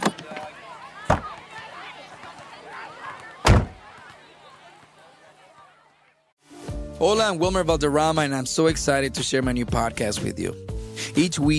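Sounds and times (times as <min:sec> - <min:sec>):
faint voices murmuring: 0:00.0 - 0:06.3
door being shut and locked: 0:03.4 - 0:03.8
speech: 0:07.0 - 0:11.5.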